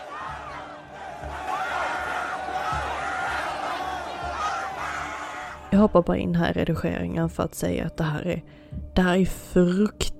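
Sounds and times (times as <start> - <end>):
concert crowd shouting and screaming for help: 0.0 - 5.8
speech: 5.7 - 10.1.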